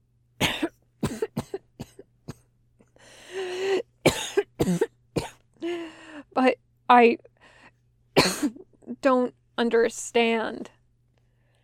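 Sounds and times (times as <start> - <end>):
harsh body-racking coughing fit from a scrawny 15-year-old boy: 0.4 - 2.4, 4.0 - 5.4, 8.2 - 8.6
long raspy wheezing breath: 3.0 - 3.9
speech: 4.7 - 4.9, 7.0 - 7.3, 8.2 - 10.8.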